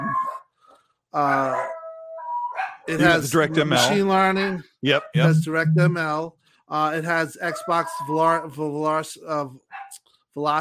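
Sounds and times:
speech: 1.1s - 1.7s, 2.9s - 10.5s
dogs barking: 1.2s - 1.9s, 2.5s - 4.0s
dogs howling: 1.2s - 3.2s, 7.4s - 8.5s.

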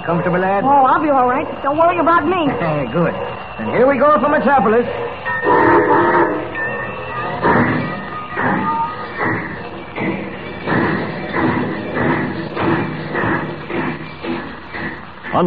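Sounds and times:
steam locomotive chuffing as the train gets underway: 0.0s - 15.4s
speech: 0.1s - 5.6s
steam locomotive whistle: 5.3s - 6.6s.

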